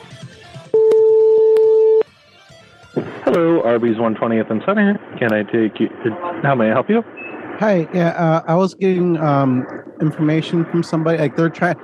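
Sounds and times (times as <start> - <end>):
dual-pitched telephone keypad tone: 0.8 - 2.0
speech: 3.3 - 11.8.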